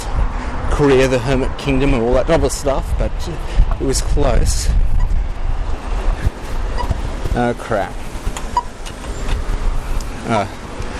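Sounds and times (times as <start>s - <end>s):
road traffic in Australia with cars passing: 0.0s - 10.9s
speech: 0.8s - 4.8s, 7.4s - 8.0s, 10.2s - 10.6s.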